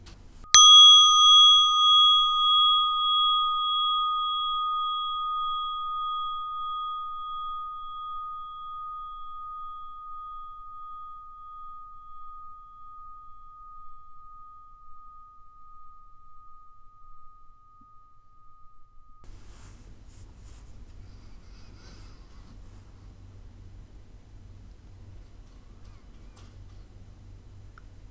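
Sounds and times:
meditation bell ringing: 0.5s - 19.4s.

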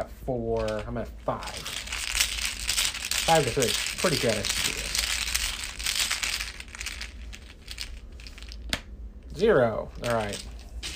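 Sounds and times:
speech: 0.0s - 1.8s, 3.3s - 5.0s, 9.4s - 10.9s
card game exploration deck being shuffled: 0.6s - 8.8s, 10.0s - 10.9s.

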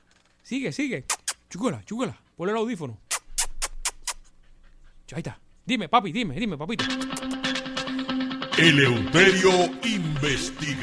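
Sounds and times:
speech: 0.5s - 3.0s, 5.1s - 7.6s, 8.6s - 10.8s
dog making breathy rhythmic bursts: 1.0s - 5.7s.

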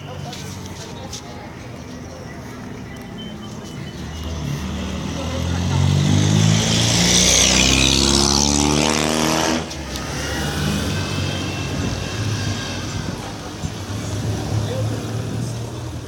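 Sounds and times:
murmured voices of people: 0.0s - 8.9s, 9.5s - 16.0s
busy street traffic: 0.0s - 16.0s
loud vehicle passing: 4.0s - 16.0s.

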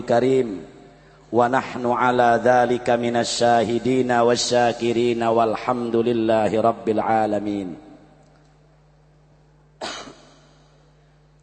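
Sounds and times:
speech: 0.0s - 0.7s, 1.3s - 7.8s
person coughing: 9.8s - 10.8s.

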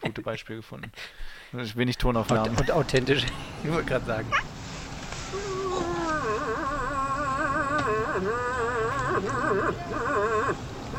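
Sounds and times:
speech: 0.2s - 4.5s, 8.2s - 10.7s
moose howling: 5.3s - 10.9s.

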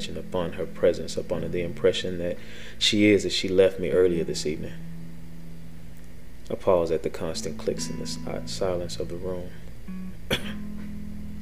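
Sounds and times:
low steady hum: 0.0s - 11.3s
speech: 0.1s - 4.9s, 6.5s - 9.6s
woman coughing: 10.3s - 10.7s.

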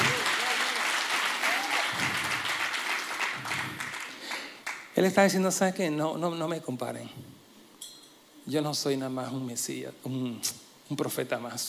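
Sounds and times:
congregation applauding: 0.0s - 4.9s
speech: 5.0s - 7.4s, 8.5s - 11.6s.

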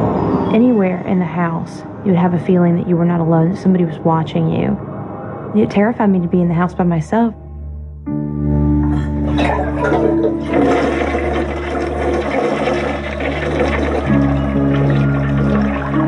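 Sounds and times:
speech: 0.5s - 4.9s, 5.5s - 7.4s, 8.0s - 8.5s, 9.4s - 11.5s
toilet flushing in a house: 9.3s - 16.0s.

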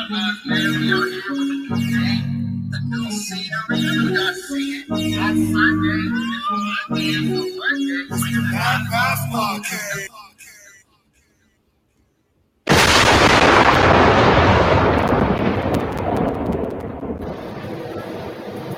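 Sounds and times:
people talking: 0.0s - 10.8s
thunder crack rolling into a rumble: 12.7s - 18.7s.

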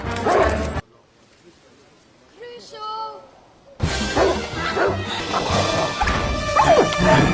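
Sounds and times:
soldiers' pet dog barking while chasing a creature through a kitchen: 0.2s - 0.6s, 4.2s - 5.0s
shrill yowling cries: 4.8s - 7.2s.

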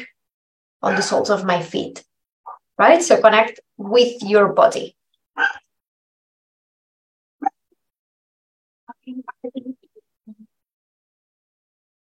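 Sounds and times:
speech: 0.8s - 2.1s, 2.8s - 5.6s
dog barking: 5.4s - 5.7s.

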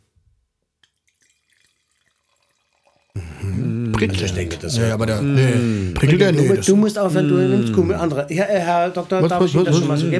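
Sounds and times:
small drips of wine: 0.8s - 4.7s
Gemischter Satz wine pouring and bubbling into a glass: 0.9s - 6.0s
speech: 4.0s - 10.1s.

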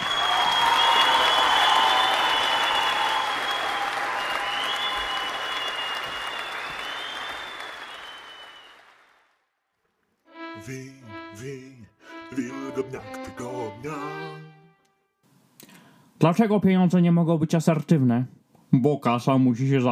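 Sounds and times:
crowd applauding: 0.0s - 9.4s
speech: 10.6s - 11.7s, 12.3s - 14.5s, 16.2s - 19.9s.

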